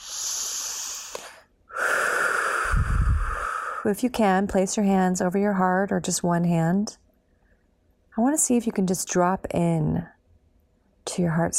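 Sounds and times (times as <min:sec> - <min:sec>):
deep breath: 0:00.0 - 0:03.9
speech: 0:03.8 - 0:07.0, 0:08.2 - 0:10.2, 0:11.2 - 0:11.5.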